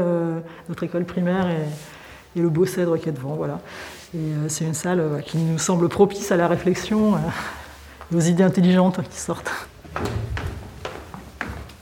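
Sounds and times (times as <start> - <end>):
speech: 0.0 - 10.3
door being pushed open: 9.9 - 10.8.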